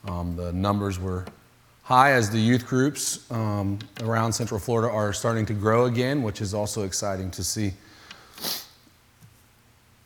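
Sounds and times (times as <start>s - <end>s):
speech: 0.2s - 8.6s
person sniffling from allergies: 7.9s - 8.8s.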